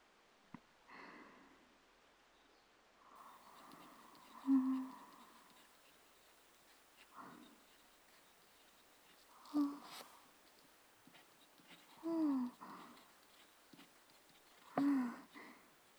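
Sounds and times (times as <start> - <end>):
faint rustling: 3.2 - 15.9
pen, not a ballpoint, scratching on paper writing characters: 3.4 - 15.9.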